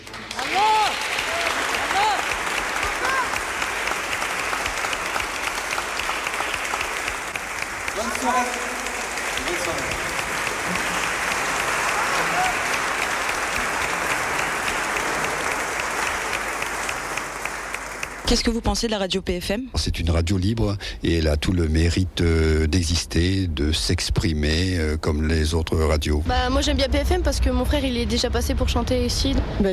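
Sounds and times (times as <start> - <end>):
crowd applauding volunteers at a concert event: 0.0 - 18.4
people cheering and whooping at a concert event: 0.4 - 6.1, 9.4 - 18.1
speech: 18.3 - 29.7.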